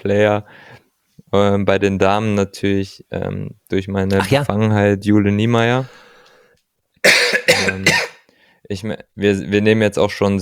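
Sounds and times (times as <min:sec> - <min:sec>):
speech: 0:00.0 - 0:06.0, 0:08.6 - 0:10.3
harsh throaty coughing: 0:07.0 - 0:08.3.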